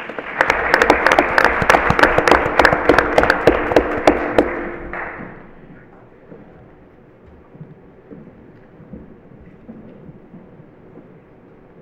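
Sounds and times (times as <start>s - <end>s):
audience applause for student vocalists: 0.0s - 5.8s.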